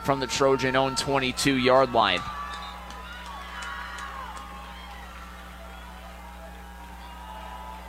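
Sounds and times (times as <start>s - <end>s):
speech: 0.0s - 2.4s
football stadium crowd cheering and murmuring: 0.0s - 7.8s
scattered shouts: 0.0s - 7.8s.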